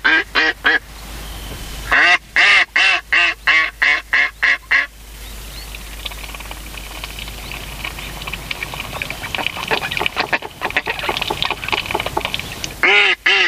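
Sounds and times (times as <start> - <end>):
mallard quacking: 0.0 - 0.8, 1.9 - 4.9, 8.6 - 13.4.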